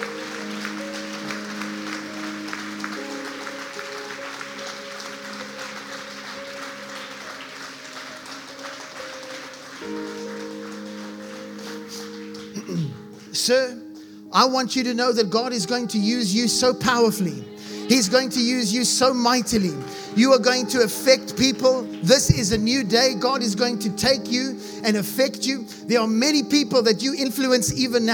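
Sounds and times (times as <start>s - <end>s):
crowd applauding: 0.0s - 13.3s, 17.6s - 23.2s
sustained keyboard or organ chords: 0.0s - 28.1s
speech: 13.5s - 28.1s.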